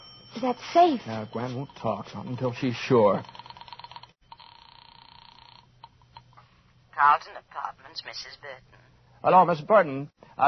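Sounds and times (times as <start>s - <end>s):
telephone ringing: 0.0s - 6.3s
speech: 0.4s - 3.4s, 7.1s - 10.4s.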